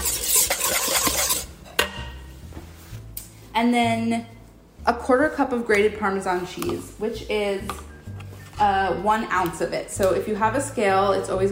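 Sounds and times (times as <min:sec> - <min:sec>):
whisking lemon juice and black pepper: 0:00.0 - 0:01.5
speech: 0:03.6 - 0:07.9, 0:08.6 - 0:11.4.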